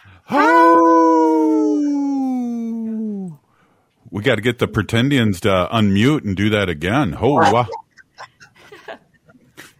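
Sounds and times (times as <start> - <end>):
speech: 0.3 - 0.5, 4.2 - 7.8
person howling like a wolf: 0.3 - 3.4.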